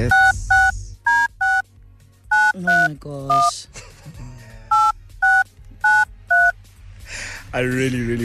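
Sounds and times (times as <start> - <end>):
speech: 0.0 - 0.3, 3.0 - 3.7, 7.6 - 8.2
touch-tone dialing beeps from a phone keypad: 0.1 - 1.6, 2.3 - 3.5, 4.7 - 6.6.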